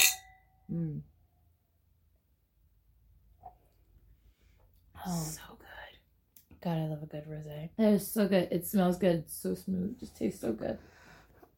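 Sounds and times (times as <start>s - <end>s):
wine glasses of rosé clinking in a toast: 0.0s - 0.6s
speech: 0.7s - 1.1s, 5.0s - 5.6s, 6.6s - 11.0s.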